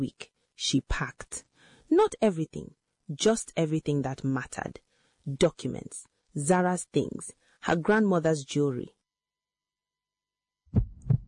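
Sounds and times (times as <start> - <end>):
speech: 0.0 - 9.0
deep heartbeat thumping: 10.7 - 11.2.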